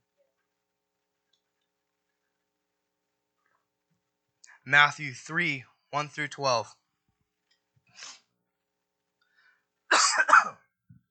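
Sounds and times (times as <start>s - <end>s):
speech: 4.6s - 6.8s, 8.0s - 8.2s
person coughing: 9.9s - 10.7s.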